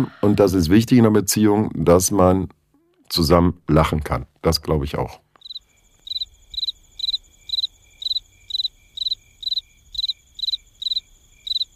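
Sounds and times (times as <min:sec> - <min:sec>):
speech: 0:00.0 - 0:05.2
cricket chirping: 0:05.4 - 0:11.7.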